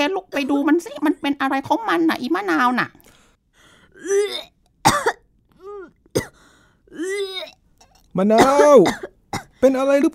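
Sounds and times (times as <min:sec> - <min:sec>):
speech: 0:00.0 - 0:03.0, 0:04.0 - 0:05.2, 0:06.1 - 0:07.6, 0:08.2 - 0:10.1
teenage girl retching and gagging: 0:03.9 - 0:06.3, 0:06.9 - 0:09.4.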